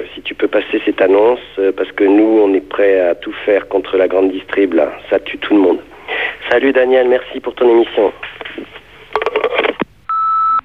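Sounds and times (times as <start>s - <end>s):
speech: 0.4s - 8.7s
crackly sound: 8.0s - 9.9s
answering machine beep: 10.1s - 10.6s.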